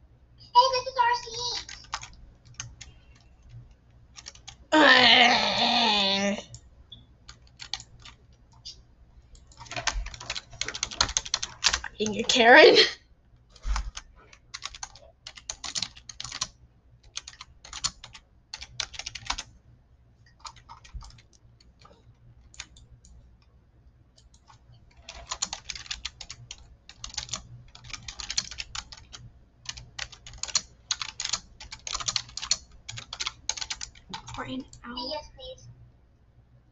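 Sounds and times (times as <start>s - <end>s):
low steady hum: 0.0s - 36.7s
rapid typing on a computer keyboard: 1.5s - 4.7s, 7.3s - 8.7s, 9.3s - 12.4s, 13.6s - 19.5s, 20.3s - 23.5s, 24.1s - 34.8s
speech: 12.0s - 13.0s.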